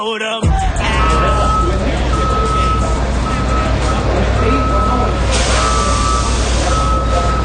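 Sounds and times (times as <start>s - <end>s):
speech: 0.0s - 0.6s
faint voices: 0.5s - 7.4s
loud constant semi-trailer truck diesel engine rumble: 0.5s - 7.4s
semi-trailer truck reversing alarm beeping: 0.5s - 7.4s.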